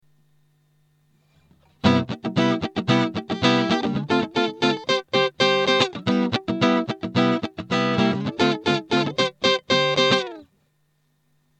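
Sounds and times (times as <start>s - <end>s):
electric guitar chords on neck pickup: 1.8s - 10.5s.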